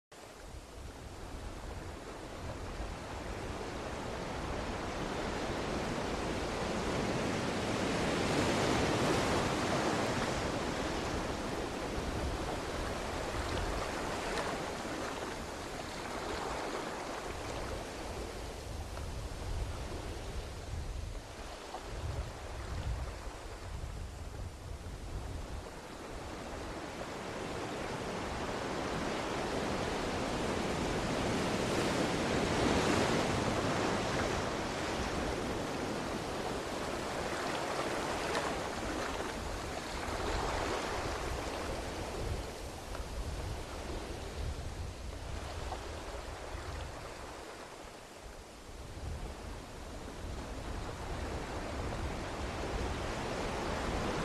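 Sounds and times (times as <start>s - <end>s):
sea waves: 0.2s - 54.2s.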